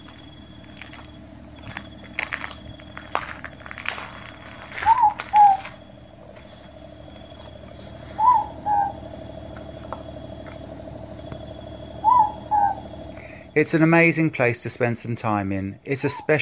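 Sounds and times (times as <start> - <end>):
steady low hum: 0.0 - 16.3
Morepork calling a two-note hoot at night from a tree: 4.8 - 5.8, 7.6 - 13.5
speech: 13.6 - 16.3.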